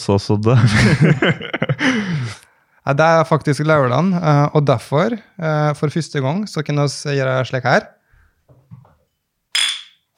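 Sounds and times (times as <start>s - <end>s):
speech: 0.0s - 8.0s
laughter: 0.6s - 2.4s
beer glasses clinking in a toast: 9.1s - 10.1s.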